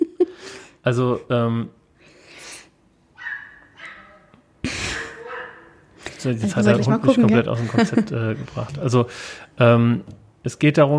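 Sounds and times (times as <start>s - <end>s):
speech: 0.8s - 1.8s, 6.2s - 10.9s
dog yelping outside: 3.2s - 4.3s, 4.9s - 5.8s
laughter: 6.4s - 9.1s.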